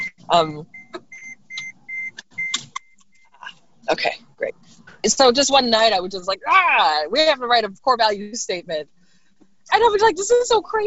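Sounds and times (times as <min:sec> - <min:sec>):
car seatbelt warning beeps: 0:00.0 - 0:03.4
speech: 0:00.3 - 0:00.8, 0:03.9 - 0:09.0, 0:09.7 - 0:10.8.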